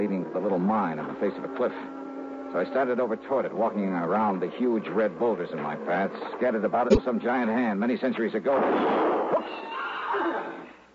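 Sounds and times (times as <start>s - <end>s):
speech: 0.4s - 10.6s
horse whinnying: 9.1s - 10.8s.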